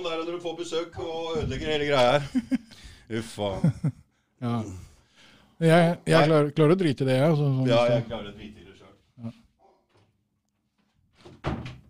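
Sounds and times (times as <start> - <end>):
speech: 0.0 - 4.9, 5.6 - 9.4
laughter: 2.0 - 4.1
door pushed shut with a solid thud: 11.2 - 11.8.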